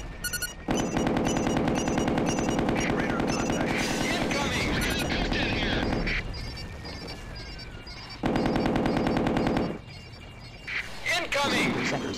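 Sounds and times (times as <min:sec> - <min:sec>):
helicopter noise from a combat video game: 0:00.0 - 0:12.1
rapid machine-gun fire from a combat video game: 0:00.7 - 0:04.3, 0:08.2 - 0:09.8.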